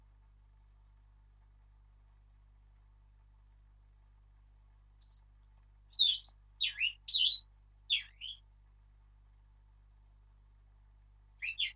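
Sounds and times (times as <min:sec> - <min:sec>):
Eurasian blackcap singing a short phrase: 0:05.0 - 0:08.4, 0:11.4 - 0:11.7.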